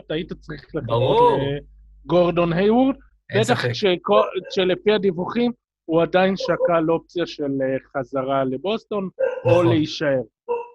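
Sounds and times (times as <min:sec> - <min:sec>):
speech: 0:00.1 - 0:10.6
dog barking in short repeated yaps: 0:06.4 - 0:06.8, 0:09.2 - 0:09.7, 0:10.5 - 0:10.7.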